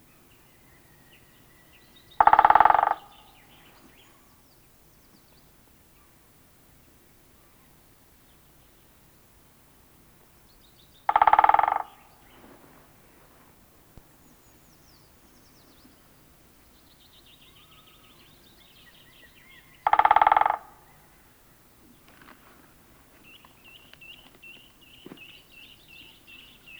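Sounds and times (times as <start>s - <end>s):
great spotted woodpecker calls: 1.9s - 3.6s, 11.0s - 12.4s, 17.4s - 22.5s, 23.1s - 26.7s.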